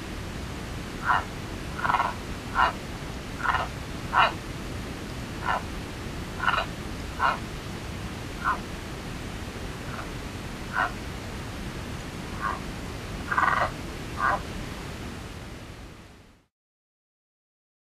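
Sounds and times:
steady hissing background noise: 0.0s - 16.5s
Sierra Madre yellow-legged frog calling in North America: 1.0s - 2.8s, 3.4s - 4.4s, 5.4s - 5.7s, 6.3s - 7.5s, 8.4s - 8.7s, 9.8s - 11.1s, 12.3s - 14.5s.

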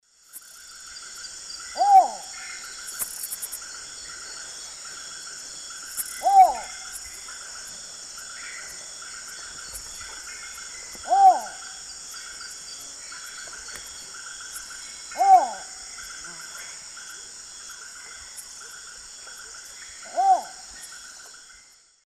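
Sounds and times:
Ixobrychus exilis call playback from South American Eastern Lowlands: 1.7s - 2.7s, 6.0s - 7.0s, 10.9s - 11.8s, 15.1s - 15.8s, 19.9s - 20.9s.

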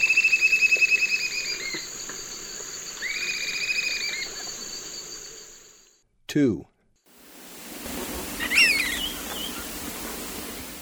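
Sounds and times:
continuous insect hum in the eastern lowlands of South America: 0.1s - 6.0s, 7.1s - 10.7s
Swainson's flycatcher calling in rolling burry series: 7.1s - 10.7s.

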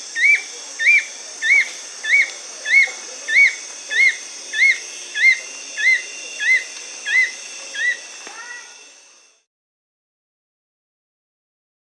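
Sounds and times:
fulvous-chinned nunlet whistled calls in the Amazon region of Bolivia: 0.1s - 8.7s.

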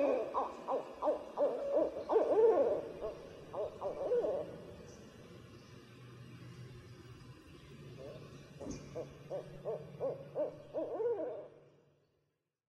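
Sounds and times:
barred owl hooting: 0.0s - 4.9s, 8.0s - 11.7s
low steady hum: 0.0s - 12.6s.

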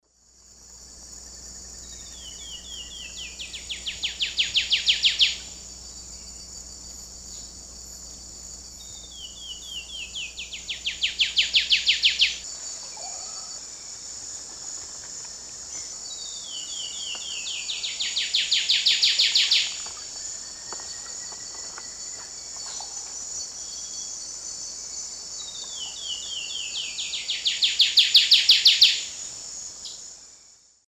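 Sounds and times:
Basileuterus fulvicauda singing: 1.5s - 6.5s, 7.2s - 13.9s, 15.7s - 24.3s, 25.3s - 29.2s.

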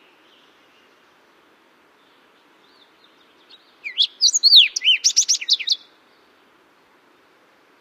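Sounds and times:
Fox Sparrow singing whistled notes and buzzy trills, Western North American bird: 2.0s - 5.9s.

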